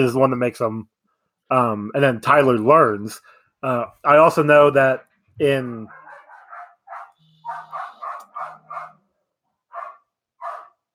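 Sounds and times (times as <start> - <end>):
speech: 0.0 - 6.0
dog barking: 5.9 - 10.9.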